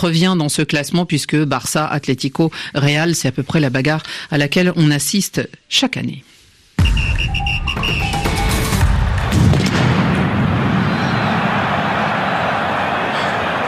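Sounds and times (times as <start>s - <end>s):
speech: 0.0s - 8.1s
firecracker blast in a football stadium: 8.9s - 11.8s
crowd roaring in a packed football stadium: 10.2s - 13.6s.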